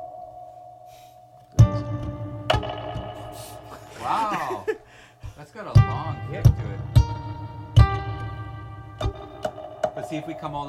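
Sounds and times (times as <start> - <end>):
plucked electric guitar notes with long reverb tails: 1.5 - 3.9, 5.7 - 10.6
speech: 5.4 - 6.9, 10.1 - 10.6.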